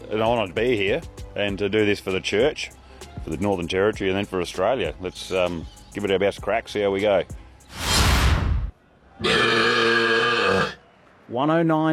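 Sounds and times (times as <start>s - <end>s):
speech: 0.1s - 7.8s, 9.2s - 9.7s, 11.3s - 11.9s
loud belch: 9.2s - 10.8s.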